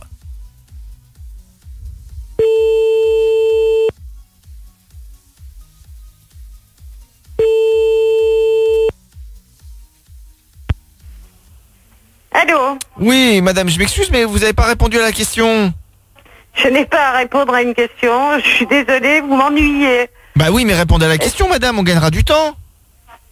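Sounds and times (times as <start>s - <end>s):
rhythmic beat: 0.0s - 12.1s
telephone line tone while calling a listener back: 2.4s - 3.9s, 7.4s - 8.9s
speech: 13.0s - 15.8s, 16.6s - 22.6s.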